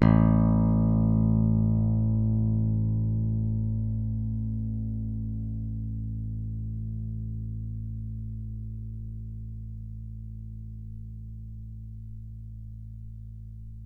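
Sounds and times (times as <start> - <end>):
fat beam pick bass: 0.0 - 13.8.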